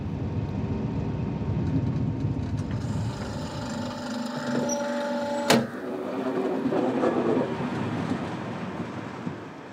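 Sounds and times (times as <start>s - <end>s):
train rolling into a station: 0.0s - 9.7s
faint squealing train brakes: 2.8s - 6.5s.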